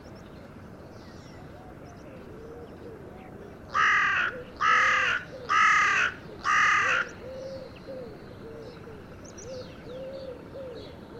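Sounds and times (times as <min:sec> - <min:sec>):
carrion crow cawing: 0:03.7 - 0:07.2.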